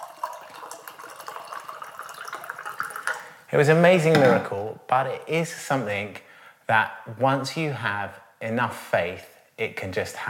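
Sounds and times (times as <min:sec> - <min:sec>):
water poured into a wine glass: 0:00.0 - 0:03.4
speech: 0:03.5 - 0:10.2.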